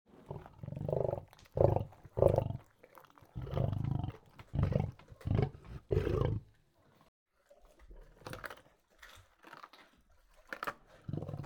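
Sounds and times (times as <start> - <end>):
lion growling in low throaty bursts while eating: 0.1 - 6.5, 11.1 - 11.4.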